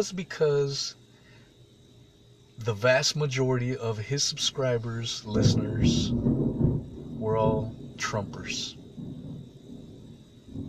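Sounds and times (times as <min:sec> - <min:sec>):
speech: 0:00.0 - 0:01.0, 0:02.6 - 0:06.3, 0:07.3 - 0:08.8
low rolling thunder during a rainstorm: 0:05.2 - 0:10.6
soft rain: 0:05.4 - 0:10.6.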